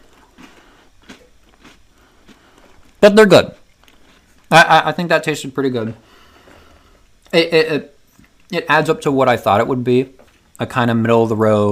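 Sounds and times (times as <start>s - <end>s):
chewing on a shortbread cookie: 0.0s - 3.0s, 3.6s - 4.5s
speech: 3.0s - 3.6s, 4.5s - 6.1s, 7.3s - 7.9s, 8.5s - 11.6s.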